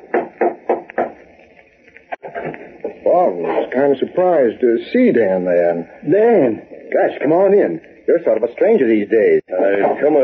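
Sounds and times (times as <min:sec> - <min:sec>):
firm knocks on a door: 0:00.0 - 0:01.2
speech: 0:03.2 - 0:10.2.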